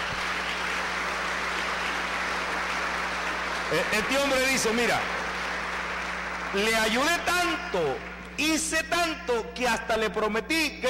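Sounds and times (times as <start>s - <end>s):
audience applause: 0.0s - 8.0s
faint low electrical hum: 0.0s - 10.8s
speech: 3.7s - 5.2s, 6.5s - 10.8s.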